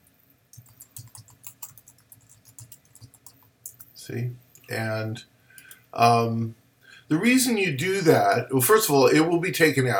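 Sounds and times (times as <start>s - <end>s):
typing on a computer keyboard: 0.5s - 3.9s
speech: 4.1s - 5.3s, 6.0s - 9.9s.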